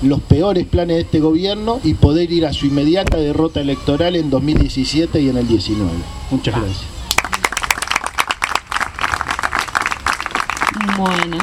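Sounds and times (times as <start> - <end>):
speech: 0.0 - 7.0, 11.0 - 11.4
audience applause at the close of a political talk: 7.1 - 11.4.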